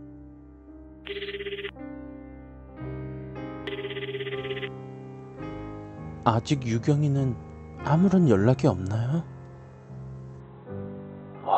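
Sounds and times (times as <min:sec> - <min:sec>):
speech: 0:01.1 - 0:01.6, 0:06.3 - 0:09.3
electronic telephone ring on an outgoing call: 0:01.1 - 0:01.7, 0:03.7 - 0:04.8.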